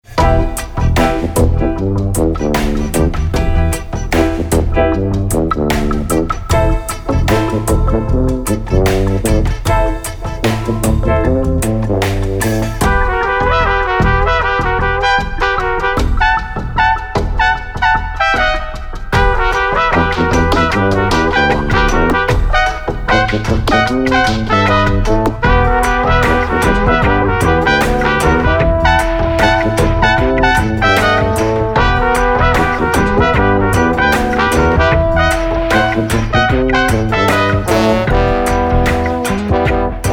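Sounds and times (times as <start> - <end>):
Bavarian reggae music: 0.0 - 40.1.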